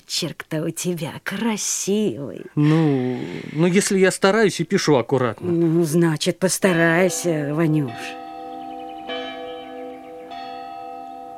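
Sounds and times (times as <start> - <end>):
speech: 0.1 - 8.2
school bell ringing: 6.7 - 11.3.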